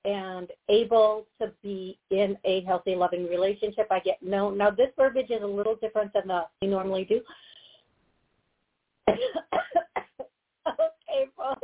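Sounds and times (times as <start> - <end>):
speech: 0.4 - 7.4, 9.1 - 9.8
person coughing: 9.1 - 11.0.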